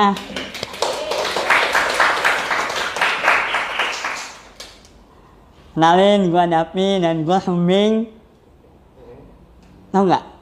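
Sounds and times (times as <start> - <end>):
speech: 0.0 - 0.4, 5.8 - 8.2, 9.9 - 10.3
audience applause: 0.4 - 4.8.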